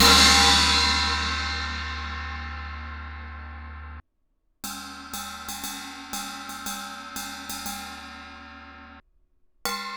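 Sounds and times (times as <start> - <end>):
16 inch filter china cymbal bell struck: 0.0 - 3.0.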